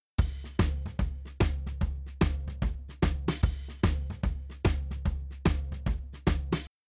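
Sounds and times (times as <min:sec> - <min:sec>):
shuffle drum beat with snare, floor tom and crash: 0:00.1 - 0:06.7.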